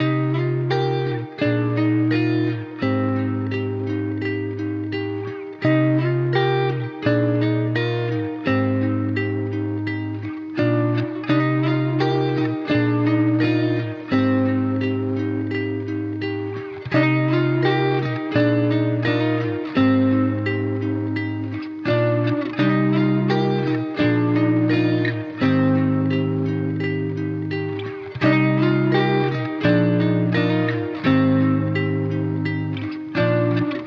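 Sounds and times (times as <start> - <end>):
guitar in C minor: 0.0 - 33.8.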